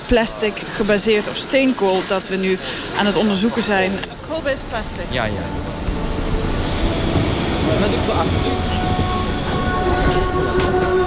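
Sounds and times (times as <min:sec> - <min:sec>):
indistinct murmuring voices: 0:00.0 - 0:11.0
metro train rumbling through an underground station in Pyongyang: 0:00.0 - 0:11.0
speech: 0:00.1 - 0:05.8, 0:07.7 - 0:08.8
metro train squealing metallic tones: 0:04.7 - 0:11.0.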